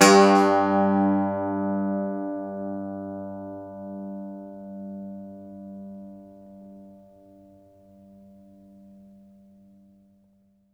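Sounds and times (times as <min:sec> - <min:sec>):
Irish bouzouki plucked strings: 0:00.0 - 0:04.0.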